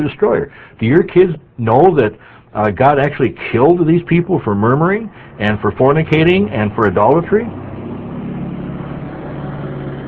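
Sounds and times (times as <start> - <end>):
speech: 0.0 - 7.7
neighbour's truck passing: 3.0 - 10.0.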